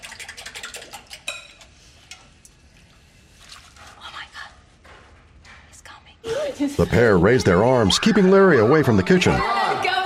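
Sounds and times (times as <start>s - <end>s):
eggs and a milky mixture being whisked in a bowl: 0.0s - 1.6s
speech: 6.4s - 9.9s.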